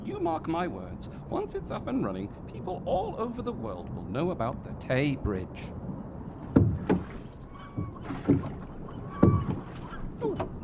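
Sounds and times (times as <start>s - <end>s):
speech: 0.2s - 5.8s
oars of a small boat splashing in water: 6.4s - 10.6s
faint wooden creak of a rowing boat: 6.9s - 10.6s.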